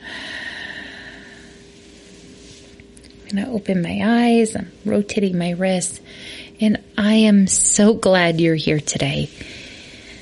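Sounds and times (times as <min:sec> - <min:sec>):
person breathing in a relaxation exercise: 0:00.0 - 0:02.7, 0:06.0 - 0:06.6, 0:09.3 - 0:10.2
speech: 0:03.3 - 0:09.6.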